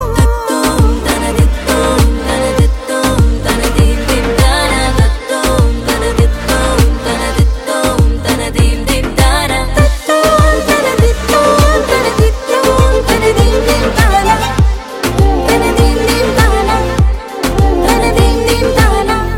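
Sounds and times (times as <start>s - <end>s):
humming background music: 0.0s - 19.3s.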